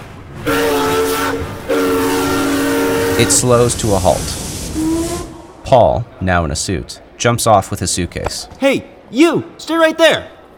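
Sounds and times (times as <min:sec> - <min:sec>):
approaching train rumbling: 0:00.0 - 0:08.5
oncoming train whistle blasts: 0:00.4 - 0:03.4, 0:04.8 - 0:05.5
speech: 0:03.2 - 0:04.4, 0:05.7 - 0:10.4.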